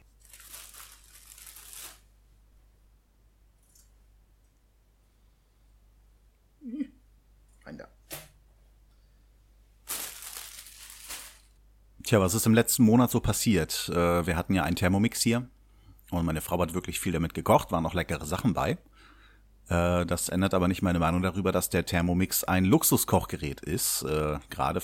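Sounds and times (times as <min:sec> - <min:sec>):
crinkly bag rustling: 0:00.0 - 0:02.1, 0:09.8 - 0:11.6
speech: 0:12.1 - 0:18.9, 0:19.7 - 0:24.8.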